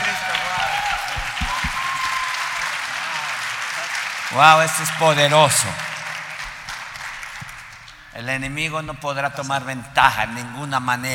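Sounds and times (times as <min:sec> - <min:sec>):
faint voices and cheers: 0:00.0 - 0:06.1
congregation applauding loudly: 0:00.0 - 0:08.8
speech: 0:04.3 - 0:05.9, 0:08.2 - 0:11.1.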